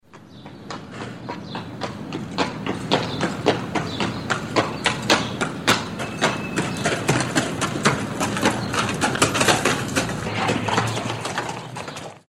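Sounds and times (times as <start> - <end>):
horse hooves: 0.1 - 12.2.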